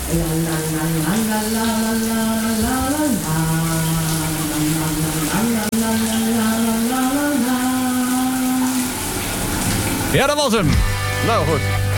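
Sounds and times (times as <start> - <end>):
person singing or humming a slow melody: 0.0 - 8.9
shower running: 0.0 - 11.9
speech: 0.1 - 3.7, 10.1 - 11.8.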